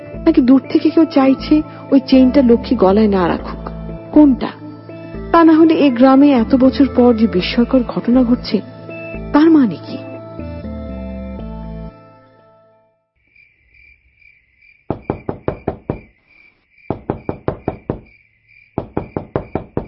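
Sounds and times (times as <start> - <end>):
music: 0.0 - 13.1
speech: 0.3 - 3.6, 4.2 - 4.6, 5.3 - 8.7, 9.3 - 10.0
crickets chirring: 13.2 - 19.8
pounding on a door from outside: 14.9 - 16.1, 16.9 - 18.2, 18.8 - 19.8.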